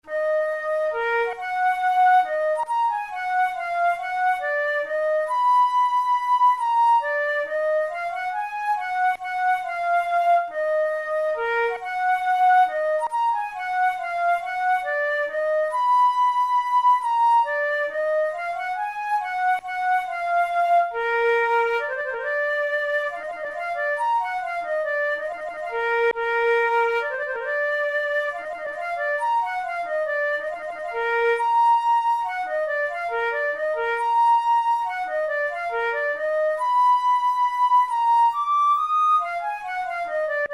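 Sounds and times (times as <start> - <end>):
flute playing studies in E flat minor: 0.0 - 40.5.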